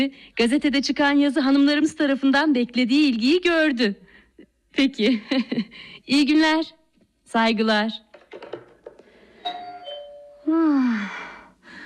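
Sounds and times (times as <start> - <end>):
speech: 0.0 - 4.1, 4.7 - 8.0, 10.5 - 11.2
two-tone doorbell chime: 9.4 - 10.5.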